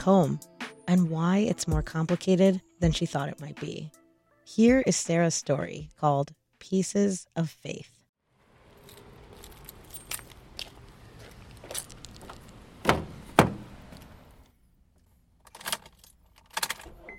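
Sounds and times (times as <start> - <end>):
speech: 0.0 - 8.0
keys jangling while getting into a car: 8.7 - 10.7, 15.4 - 16.9
sharp car door thumps: 12.8 - 13.8.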